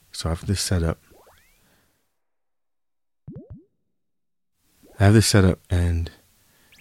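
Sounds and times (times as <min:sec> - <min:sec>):
speech: 0:00.2 - 0:01.1, 0:05.0 - 0:06.2
bouncy sweeping boing-like blips from soundboard app: 0:01.0 - 0:01.6, 0:03.3 - 0:03.8
rising cartoonish bloops from soundboard app: 0:01.0 - 0:01.8, 0:03.3 - 0:03.9, 0:04.8 - 0:05.2.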